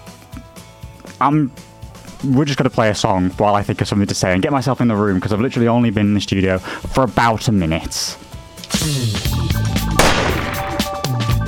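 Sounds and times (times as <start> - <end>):
speech: 1.2 - 9.6
gunshot sound effect: 10.0 - 11.1.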